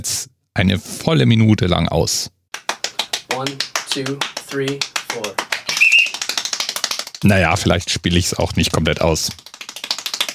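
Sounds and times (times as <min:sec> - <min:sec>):
speech: 0:00.0 - 0:02.4, 0:03.4 - 0:05.4, 0:07.2 - 0:09.5
extremely rapid hand clapping at world record pace: 0:02.5 - 0:07.7, 0:08.5 - 0:10.3
person counting: 0:03.2 - 0:06.6.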